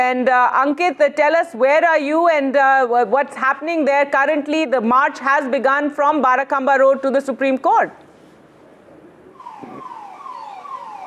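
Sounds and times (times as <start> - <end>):
speech: 0.0 - 8.0
Rapid Action Force anti-riot vehicle siren blaring: 9.4 - 11.0.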